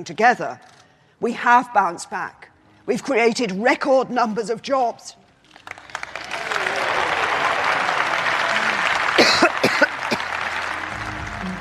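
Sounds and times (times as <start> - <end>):
speech: 0.0 - 5.2
steady applause from a large crowd: 5.6 - 11.6
short harsh coughs: 9.2 - 10.4.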